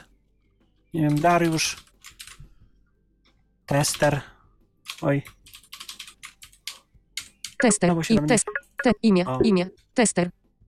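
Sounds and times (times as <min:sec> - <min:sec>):
speech: 0:00.9 - 0:01.9, 0:03.7 - 0:04.3, 0:05.0 - 0:05.4, 0:07.6 - 0:10.4
quiet typing on a computer keyboard: 0:01.1 - 0:02.5, 0:04.8 - 0:07.7.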